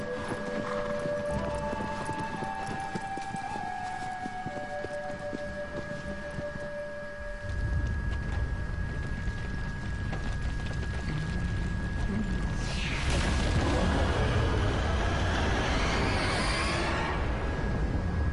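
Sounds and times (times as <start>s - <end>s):
video game horse hooves galloping: 0.0s - 12.5s
steady sustained tonal video game sounds: 0.0s - 18.3s.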